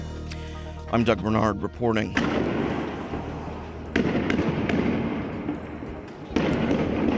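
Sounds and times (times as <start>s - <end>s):
noise of street protests: 0.2s - 7.1s
speech: 0.9s - 2.8s
Israeli police firing tear gas at protesters in Bethlehem: 2.1s - 3.4s, 3.9s - 7.1s.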